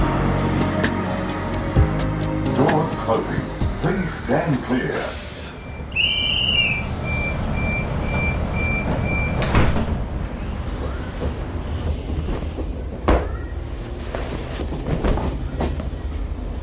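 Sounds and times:
train rumbling: 0.0 - 16.6
train carriages rattling: 2.6 - 16.6
train doors sliding shut with sharp clunks: 6.6 - 16.6.

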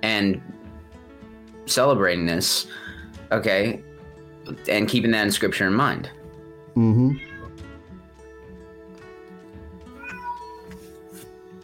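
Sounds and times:
speech: 0.0 - 0.5, 1.7 - 3.9, 4.5 - 6.2, 6.8 - 7.3
cat meowing for attention: 7.1 - 7.6, 9.9 - 10.8.

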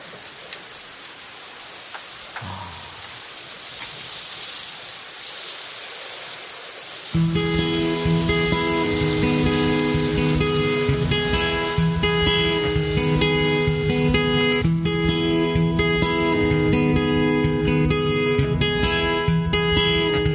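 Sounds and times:
steady rain falling: 0.0 - 20.3
scattered drips: 1.9 - 14.6
music with a steady harmonic tone: 7.2 - 20.3.

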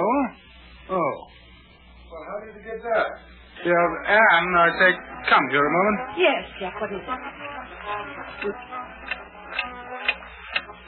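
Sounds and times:
faint low hum: 0.0 - 10.8
speech: 2.8 - 9.0
mantel alarm clock ticking: 8.3 - 10.7.

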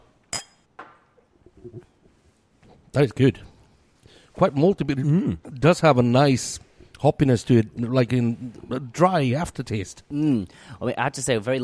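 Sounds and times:
beer glasses clinking in a toast: 0.3 - 0.7
speech: 1.6 - 1.9, 2.9 - 3.5, 4.4 - 11.6.

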